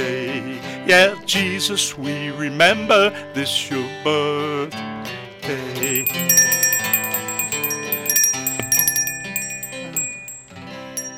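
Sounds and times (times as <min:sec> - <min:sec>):
speech: 0:00.9 - 0:06.6
several handbells rung by bell ringers: 0:05.8 - 0:11.1.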